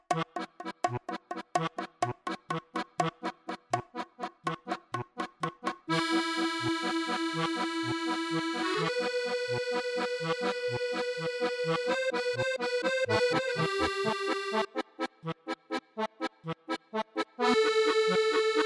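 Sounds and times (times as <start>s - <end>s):
solo accordion: 0.1s - 18.6s.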